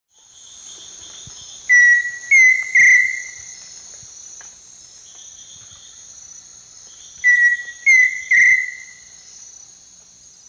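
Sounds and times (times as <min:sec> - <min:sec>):
insect chorus: 0:00.1 - 0:10.4
Dromococcyx phasianellus pheasant cuckoo whistling its song: 0:01.7 - 0:03.4, 0:07.2 - 0:09.0.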